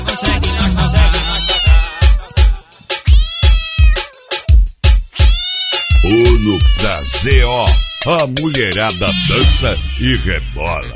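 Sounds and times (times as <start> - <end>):
laughter: 0.0 - 2.9
loud steady thumping bass beat of a dance track: 0.0 - 3.9, 4.5 - 10.0
cat-like meow samples in a dance track: 1.0 - 9.6
speech: 6.8 - 10.9.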